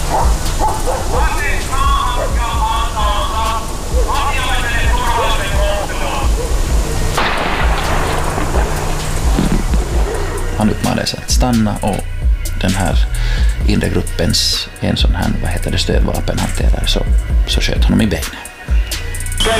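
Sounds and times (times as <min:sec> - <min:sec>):
police dog barking and yelping during an armed arrest: 0:00.0 - 0:02.6, 0:03.8 - 0:04.3, 0:05.0 - 0:07.2, 0:09.9 - 0:10.6
dense continuous noise: 0:00.0 - 0:17.6
speech: 0:10.6 - 0:18.5.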